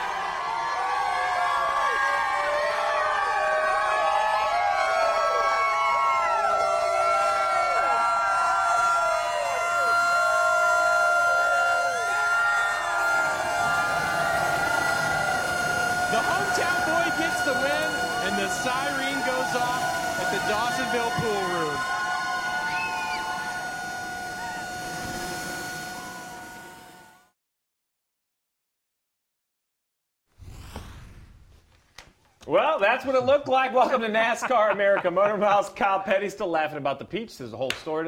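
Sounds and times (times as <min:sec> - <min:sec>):
loud steady siren wailing: 0:00.0 - 0:27.3
large cheering crowd: 0:00.0 - 0:27.4, 0:32.5 - 0:36.2
laughter: 0:33.0 - 0:35.8
speech: 0:33.0 - 0:38.0.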